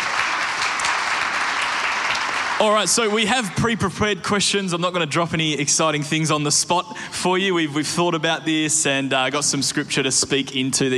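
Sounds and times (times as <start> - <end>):
crowd applauding: 0.0 - 3.8
speech: 2.6 - 10.9.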